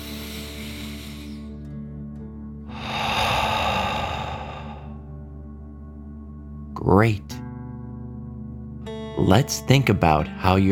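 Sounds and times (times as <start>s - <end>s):
deep breath in and out through the mouth in a children's calming meditation: 0.0s - 1.7s, 2.7s - 5.2s
speech: 6.9s - 7.4s, 9.2s - 10.6s.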